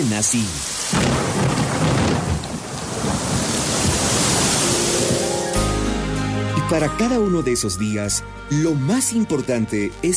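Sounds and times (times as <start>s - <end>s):
speech: 0.0s - 2.0s, 6.7s - 10.1s
heavy rain pouring: 0.0s - 5.8s
deep thunder rumbling: 0.6s - 5.6s.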